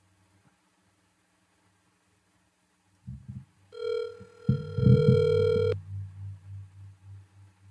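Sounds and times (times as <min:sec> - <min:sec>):
soft rhythmic low pulsing: 0:03.1 - 0:07.6
steady electronic telephone tone: 0:03.8 - 0:05.8
low thumping noises: 0:04.5 - 0:07.3.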